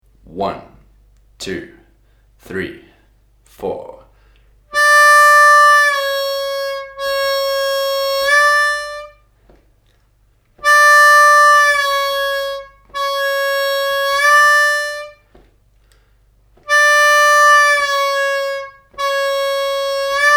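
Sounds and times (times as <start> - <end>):
harmonica straight bends exercise: 4.7 - 9.2, 10.6 - 15.5, 16.6 - 20.3.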